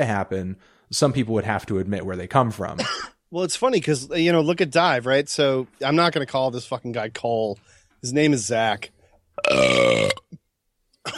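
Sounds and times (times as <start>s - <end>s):
speech: 0.0s - 10.2s
loud drawn-out burp with a rough buzzing tone: 9.4s - 10.4s.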